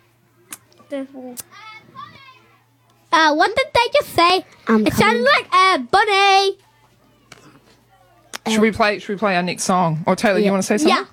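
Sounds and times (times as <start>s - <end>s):
children's high voices calling and chattering outside: 0.0s - 8.7s
speech: 0.9s - 1.6s, 3.1s - 6.6s, 8.5s - 11.1s.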